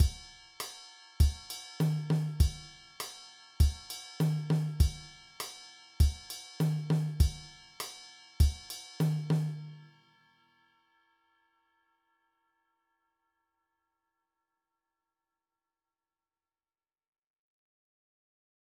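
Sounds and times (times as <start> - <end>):
mambo drum beat: 0.0 - 0.2, 1.2 - 2.7, 3.6 - 5.1, 6.0 - 7.5, 8.4 - 9.7.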